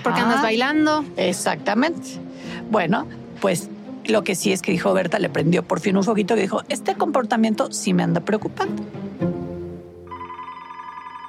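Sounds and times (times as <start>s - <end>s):
speech: 0.0s - 9.2s
telephone ringing with an incoming call: 10.1s - 11.2s.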